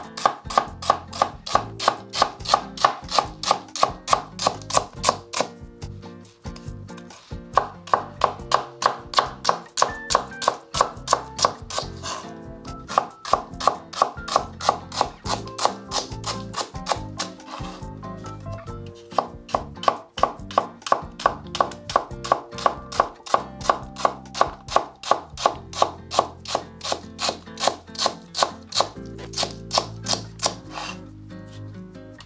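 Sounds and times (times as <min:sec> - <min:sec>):
knife thinly slicing myoga ginger on a cutting board: 0:00.0 - 0:05.6, 0:07.0 - 0:12.3, 0:12.9 - 0:17.9, 0:19.0 - 0:31.0.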